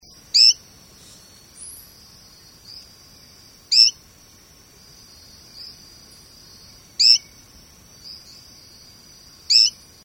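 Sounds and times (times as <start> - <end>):
Adenomera thomei calling: 0.0 - 2.9, 3.5 - 4.0, 5.0 - 8.7, 9.4 - 9.8.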